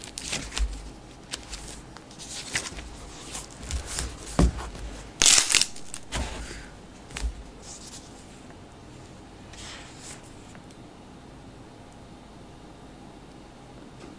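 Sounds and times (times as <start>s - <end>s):
stuck-together pages of a book being separated and turned: 0.0s - 8.3s.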